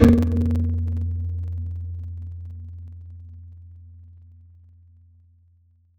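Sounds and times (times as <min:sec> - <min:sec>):
mallet instrument: 0:00.0 - 0:01.0.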